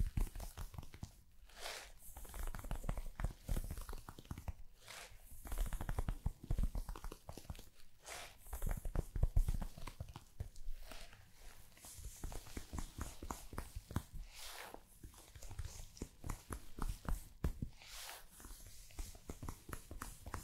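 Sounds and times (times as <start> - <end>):
body brushing and scratching against fabric: 0.2 - 20.4.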